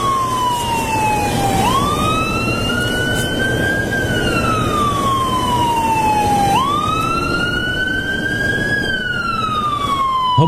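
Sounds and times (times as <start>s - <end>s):
ambulance siren wailing: 0.0s - 10.4s
road and engine noise: 0.0s - 10.4s.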